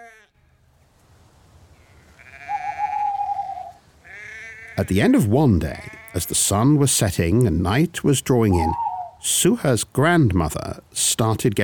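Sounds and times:
sheep bleating: 0.0s - 0.3s, 1.8s - 6.4s
speech: 4.8s - 11.6s.

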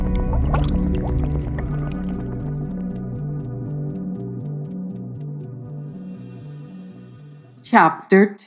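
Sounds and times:
water bubbling and gurgling with small popping drips: 0.0s - 3.4s
speech: 7.7s - 8.4s.

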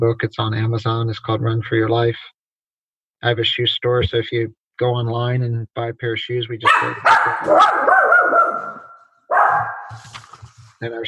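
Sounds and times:
speech: 0.0s - 2.4s, 3.2s - 8.0s, 10.8s - 11.0s
Sheltie-poodle mix dog barking: 6.6s - 10.0s.

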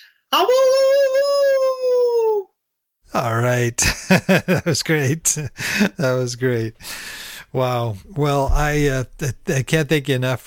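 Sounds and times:
speech: 0.3s - 0.8s, 3.1s - 10.4s
person imitating a hound dog howl: 0.3s - 2.5s
laughter: 3.8s - 6.3s.

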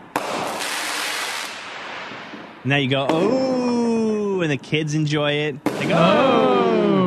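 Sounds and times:
firework cake firing shots: 0.1s - 3.7s, 5.6s - 6.6s
speech: 2.6s - 3.5s, 4.4s - 6.9s
laughter: 5.8s - 7.0s.

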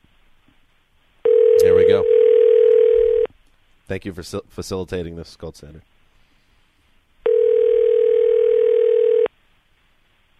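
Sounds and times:
phone call ringing tone: 1.2s - 3.3s, 7.2s - 9.3s
speech: 3.9s - 5.9s.

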